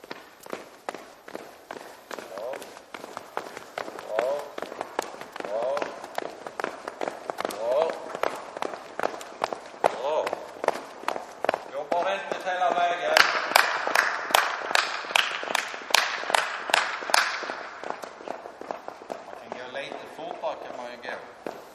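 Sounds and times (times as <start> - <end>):
athletes running footsteps on a hard indoor training hall floor: 0.0 - 21.7.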